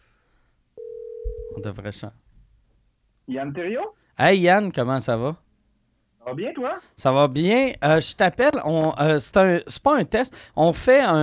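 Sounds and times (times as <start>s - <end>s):
electronic telephone ringback tone of an outgoing call: 0.8s - 1.7s
speech: 1.6s - 2.2s, 3.3s - 5.4s, 6.3s - 11.2s.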